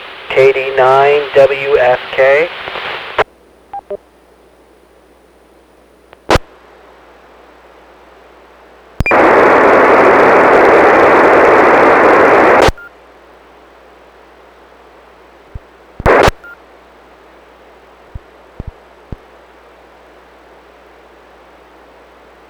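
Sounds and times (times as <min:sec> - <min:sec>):
radio static hissing: 0:00.0 - 0:03.3, 0:06.2 - 0:06.6, 0:09.0 - 0:12.8, 0:15.5 - 0:16.6
weak radio station signal buried in static: 0:00.0 - 0:03.3, 0:06.2 - 0:06.6, 0:09.0 - 0:12.9, 0:15.5 - 0:16.6, 0:18.1 - 0:19.3
speech: 0:00.4 - 0:02.7.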